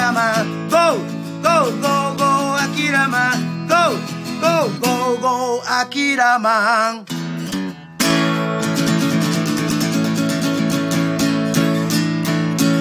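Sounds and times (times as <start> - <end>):
self-written upbeat song with punchy drums and bright chords: 0.0 - 12.7
speech: 4.7 - 7.2.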